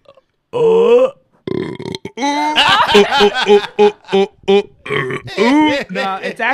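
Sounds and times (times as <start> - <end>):
deliberate burp on command: 0.0 - 2.7, 3.5 - 6.0
speech: 0.5 - 0.8, 2.2 - 6.5
laughter: 2.3 - 4.7, 5.3 - 6.5.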